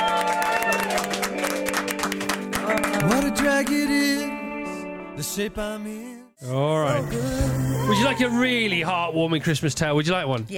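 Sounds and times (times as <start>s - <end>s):
crowd of many hands clapping: 0.0s - 4.1s
speech: 5.2s - 10.5s.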